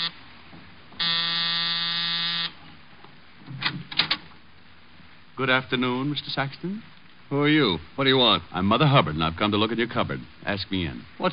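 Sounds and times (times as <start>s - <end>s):
loud harsh electric apartment door buzzer: 1.0s - 2.6s
speech: 5.4s - 11.3s.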